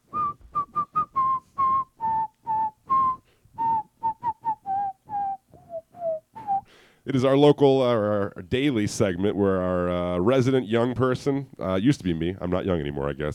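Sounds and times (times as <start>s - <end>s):
person whistling a bright bouncy tune: 0.0s - 6.8s
speech: 7.1s - 13.3s.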